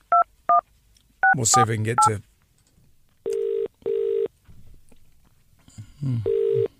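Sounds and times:
speech: 1.4s - 2.3s, 6.0s - 6.3s
telephone tones as a call is dialled and rings through: 3.3s - 4.3s, 6.3s - 6.6s.

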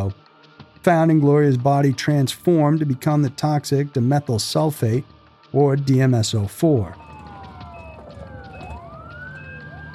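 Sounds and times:
speech: 0.0s - 0.2s, 0.8s - 7.0s
ambulance siren wailing: 6.4s - 9.9s
steady rumble of traffic and engine noise: 7.0s - 9.9s.

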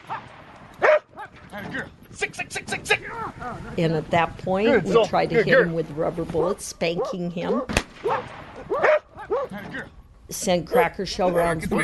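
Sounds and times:
dogs barking: 0.0s - 1.4s, 6.9s - 9.9s
speech: 1.5s - 8.4s, 9.6s - 11.8s.

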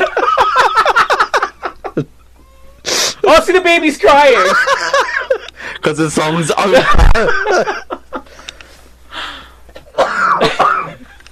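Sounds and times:
laughter: 0.0s - 2.1s, 4.2s - 8.4s
speech: 3.3s - 4.7s, 5.8s - 7.8s
breathy sound: 8.3s - 9.7s
faint clicks: 8.4s - 8.7s
person coughing: 9.9s - 11.1s.

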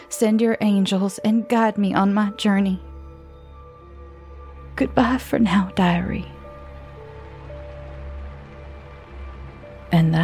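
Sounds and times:
speech: 0.2s - 2.9s, 4.8s - 6.4s, 9.9s - 10.2s
steady rain pattering outside: 5.2s - 10.2s.

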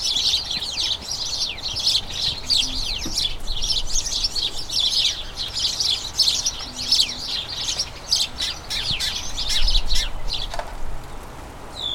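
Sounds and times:
flock of house sparrows chattering in a small front garden: 0.0s - 10.6s.

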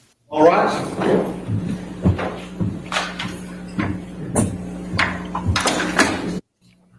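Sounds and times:
speech: 0.3s - 1.8s
kitten knocking and thumping inside a closet: 1.0s - 6.3s.

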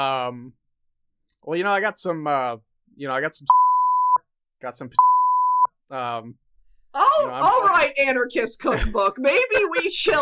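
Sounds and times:
speech: 0.0s - 0.6s, 1.4s - 3.6s, 4.6s - 5.1s, 5.9s - 10.1s
high-pitched electronic censor beeps: 3.5s - 4.3s, 5.0s - 5.8s.

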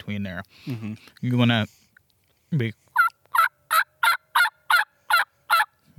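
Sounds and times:
speech: 0.0s - 1.8s, 2.5s - 2.8s
turkey yelps made on a hunting call: 3.0s - 5.7s.

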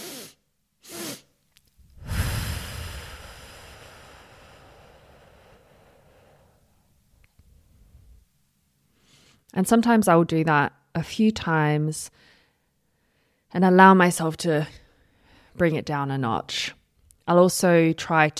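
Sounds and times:
double inhale through the nose: 0.0s - 1.3s, 1.9s - 6.6s
long exhale through the mouth: 0.0s - 6.8s
speech: 9.5s - 12.3s, 13.5s - 14.8s, 15.6s - 18.3s.

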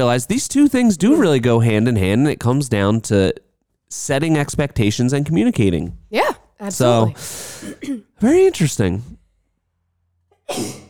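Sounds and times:
speech: 0.0s - 9.2s, 10.5s - 10.8s
person sneezing: 6.2s - 8.1s, 10.5s - 10.8s
breath intake: 6.9s - 7.8s.

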